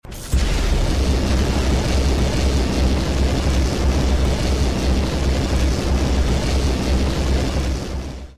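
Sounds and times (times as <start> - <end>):
toilet lasers: 0.0 - 8.3.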